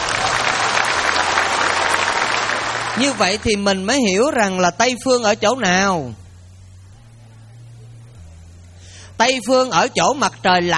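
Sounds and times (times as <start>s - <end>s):
audience applause at a Buddhist dharma talk: 0.0s - 3.6s
faint low hum: 0.0s - 10.7s
speech: 3.0s - 6.2s, 9.2s - 10.7s.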